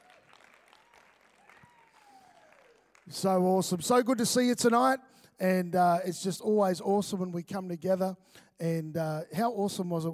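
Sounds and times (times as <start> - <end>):
crowd cheers and whoops: 0.0 - 3.0
crowd applauding a band: 0.0 - 3.4
speech: 3.1 - 10.1.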